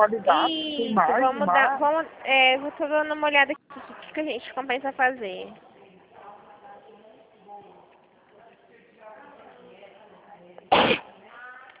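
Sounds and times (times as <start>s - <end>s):
speech: 0.0s - 5.7s
person sneezing: 10.7s - 11.1s.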